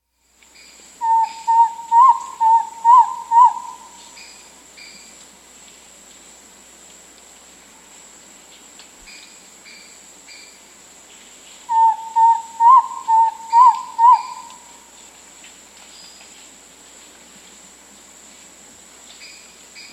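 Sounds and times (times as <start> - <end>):
Spotted Antpitta calling in South America: 1.0 - 4.4, 11.7 - 14.9.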